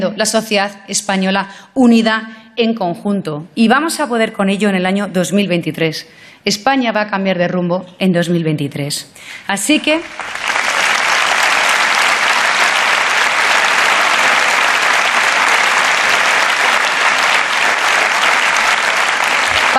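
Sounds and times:
speech: 0.0s - 10.6s
large crowd applauding at a Partido Popular rally in Spain: 10.0s - 19.7s.

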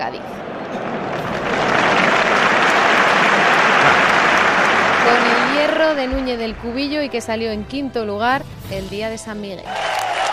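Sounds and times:
speech: 0.0s - 0.9s, 5.9s - 9.9s
large crowd applause: 0.4s - 6.3s, 9.7s - 10.3s.

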